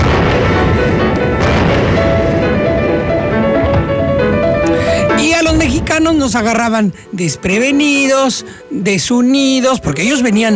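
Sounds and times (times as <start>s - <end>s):
explosions from bombing in battle: 0.0s - 6.8s
speech: 6.2s - 10.5s.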